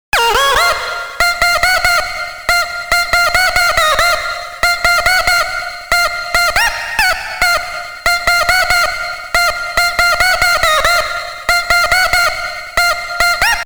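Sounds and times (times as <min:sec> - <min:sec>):
vocal with reverb: 0:00.1 - 0:13.6.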